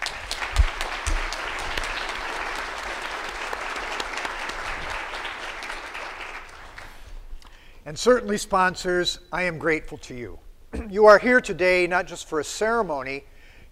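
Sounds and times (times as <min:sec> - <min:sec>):
audience applause in church: 0:00.0 - 0:07.2
speech: 0:07.9 - 0:13.7.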